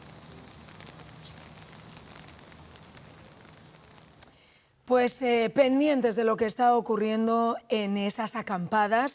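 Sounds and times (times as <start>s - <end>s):
rain pattering at an outdoor protest camp: 0.0s - 6.6s
speech: 4.9s - 9.1s.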